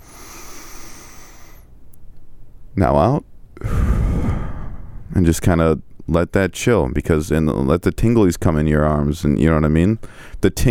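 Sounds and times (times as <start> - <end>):
long deep breath drawn in: 0.0 - 1.7, 3.6 - 5.1
speech: 2.8 - 3.3, 5.2 - 10.7.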